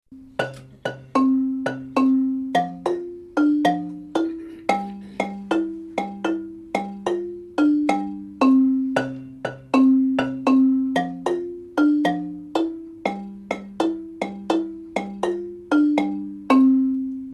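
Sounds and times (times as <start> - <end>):
tenor marimba playing: 0.1 - 17.3.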